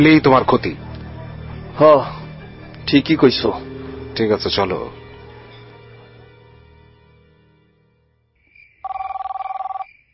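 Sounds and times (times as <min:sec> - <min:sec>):
speech: 0:00.0 - 0:00.9, 0:01.8 - 0:02.2, 0:02.9 - 0:05.0
telephone with a rapid trilling electronic ring at night: 0:08.8 - 0:09.9.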